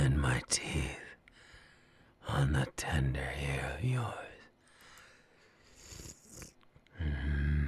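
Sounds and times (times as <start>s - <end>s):
speech: 0.2s - 1.0s, 2.3s - 4.3s
soft breaths exhaled against the microphone: 0.6s - 2.2s, 3.9s - 7.6s.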